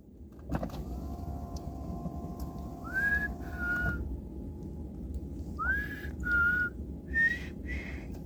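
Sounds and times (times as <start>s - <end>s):
low continuous rumbling hum: 0.0s - 8.2s
human whistles with a rising note then a steady one: 2.8s - 4.0s, 5.6s - 7.9s.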